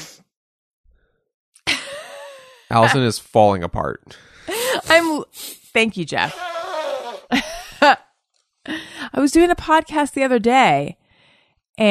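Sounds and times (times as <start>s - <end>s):
speech: 2.7s - 6.5s, 7.3s - 8.0s, 9.2s - 11.0s
forceful nasal sniff: 4.8s - 5.7s.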